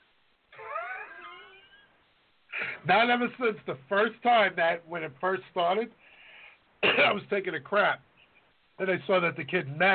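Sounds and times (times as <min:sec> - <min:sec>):
person imitating a cat meow: 0:00.6 - 0:01.8
speech: 0:02.8 - 0:06.1, 0:06.8 - 0:08.1, 0:08.8 - 0:09.9.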